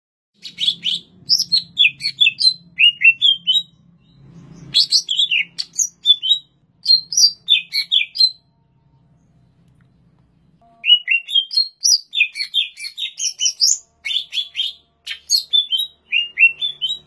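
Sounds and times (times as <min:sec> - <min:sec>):
greater green leafbird song in Banyuwangi, Indonesia: 0:00.4 - 0:17.0
faint low hum: 0:00.5 - 0:10.9.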